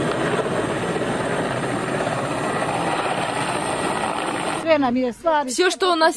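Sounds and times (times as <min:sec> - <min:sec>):
helicopter evacuating residents of flooded villages flying overhead: 0:00.0 - 0:04.8
speech: 0:04.8 - 0:06.1.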